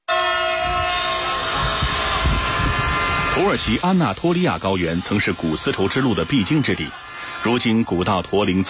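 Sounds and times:
high tonal whine of a high-speed train: 0:00.0 - 0:07.3
high-speed train passing on the Ankara–Istanbul line on the Anatolian plateau: 0:00.0 - 0:08.6
rumbling rail noise: 0:00.0 - 0:08.6
speech: 0:03.4 - 0:08.6.

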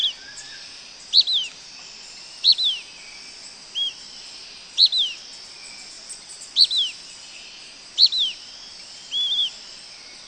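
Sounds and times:
blackish pewee Contopus nigrescens nigrescens high downslurred calls and burry wavering note: 0:00.0 - 0:01.6, 0:02.4 - 0:02.9, 0:03.7 - 0:04.0, 0:04.8 - 0:05.2, 0:06.6 - 0:07.0, 0:08.0 - 0:08.4, 0:09.1 - 0:09.6
steady insect hum: 0:00.0 - 0:10.2.

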